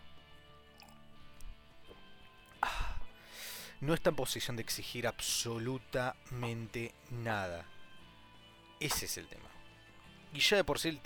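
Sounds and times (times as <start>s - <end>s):
sip of coffee: 0.6s - 2.6s
speech: 3.8s - 7.8s, 8.8s - 9.6s, 10.3s - 11.0s.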